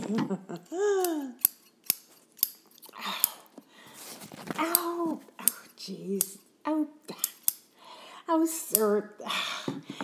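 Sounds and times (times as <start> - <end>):
speech: 0.1 - 0.8, 8.4 - 9.5
scissors snipping through hair: 0.6 - 3.4, 4.6 - 6.5, 7.1 - 7.7, 8.7 - 9.0.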